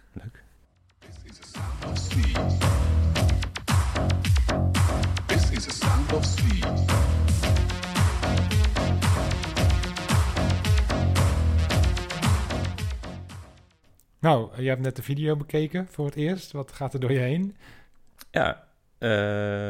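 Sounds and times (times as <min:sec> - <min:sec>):
1988 house music track playing: 0:01.0 - 0:13.7
speech: 0:14.2 - 0:19.6.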